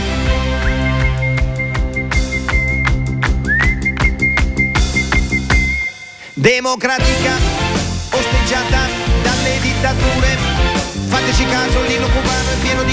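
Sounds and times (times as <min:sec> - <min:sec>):
repeating bass line: 0:00.0 - 0:12.9
person whistling a one-note melody: 0:00.6 - 0:06.4
speech: 0:06.4 - 0:07.6.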